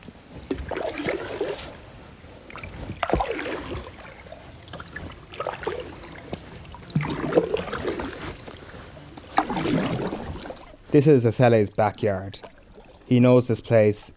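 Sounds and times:
faint ambient hiss: 0.0 - 14.1
two people paddling a wooden boat through water: 0.5 - 1.8, 2.4 - 11.2, 11.8 - 13.3
speech: 11.0 - 12.5, 13.1 - 14.1.

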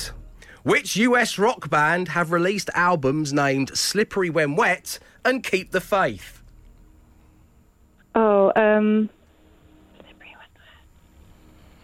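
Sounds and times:
faint steady hiss: 0.0 - 11.8
speech: 0.6 - 6.4, 8.2 - 9.2
person whispering an answer: 10.0 - 10.9.

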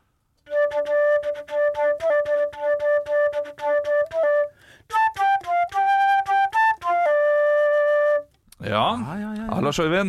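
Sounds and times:
solo flute playing a lively rock melody: 0.4 - 8.4
speech: 8.7 - 10.0.

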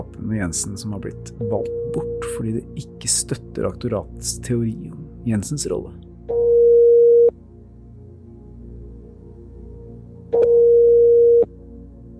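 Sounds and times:
speech: 0.0 - 6.1
telephone ringback tone on a call to the public prosecutor's office in Oslo: 6.3 - 7.3, 10.4 - 11.5.

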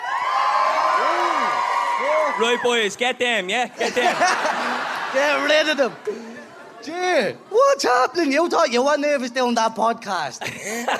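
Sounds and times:
whoops and shouted voices from audience: 0.0 - 2.9
live audience cheering: 0.0 - 3.1, 3.9 - 6.8
speech: 2.4 - 10.9
laughter: 3.7 - 8.3, 10.3 - 10.9.

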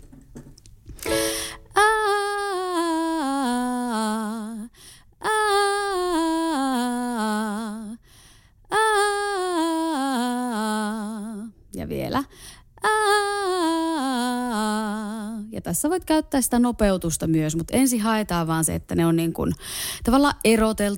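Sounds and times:
solo voice singing a single vowel in descending melismatic runs: 1.1 - 8.0, 8.7 - 11.9, 12.8 - 15.6
speech: 15.7 - 20.9.

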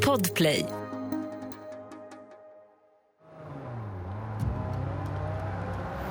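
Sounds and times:
speech: 0.1 - 0.8
roaring car engines revving as vehicles speed past: 3.2 - 6.1.

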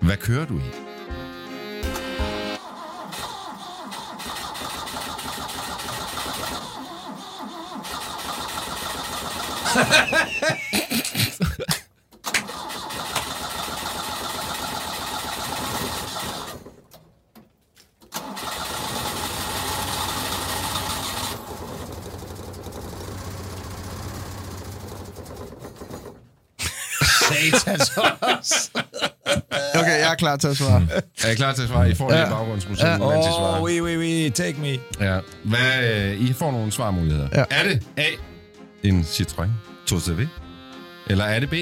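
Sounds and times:
speech: 0.1 - 0.8, 9.8 - 10.6, 30.2 - 40.5, 41.1 - 41.6
car engine cranking but failing to start: 2.6 - 10.0, 12.1 - 26.5
laughter: 9.6 - 11.9, 26.6 - 38.2.

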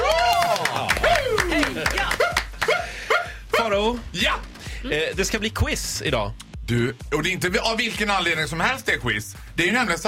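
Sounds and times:
voices whooping and calling out: 0.0 - 2.9
people clapping for an arriving guest: 0.0 - 3.4
speech: 4.2 - 10.0.

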